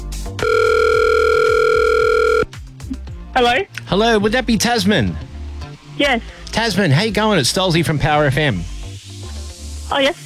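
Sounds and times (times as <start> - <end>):
loud steady electronic telephone ringback tone of an outgoing call: 0.4 - 2.5
speech: 3.4 - 5.3, 6.0 - 8.7, 9.9 - 10.2.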